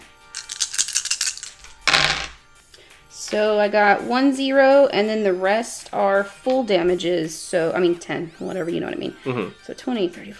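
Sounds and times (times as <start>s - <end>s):
dice rattling shaken in a hand or cup: 0.0s - 2.4s
speech: 3.3s - 10.3s.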